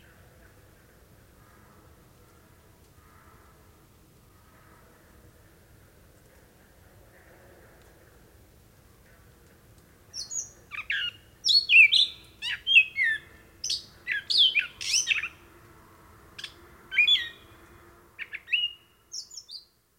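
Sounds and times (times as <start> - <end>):
Gray Catbird singing a night song: 10.2 - 15.4, 16.4 - 17.6, 18.2 - 19.7.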